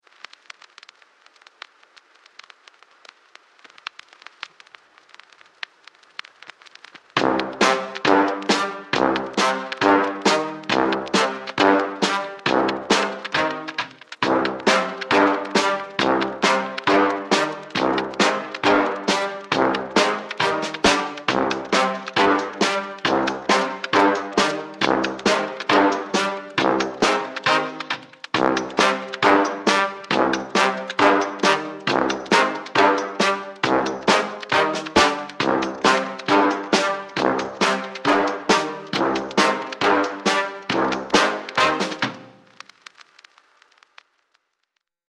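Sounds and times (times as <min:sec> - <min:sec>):
cimbalom: 0:07.1 - 0:42.6.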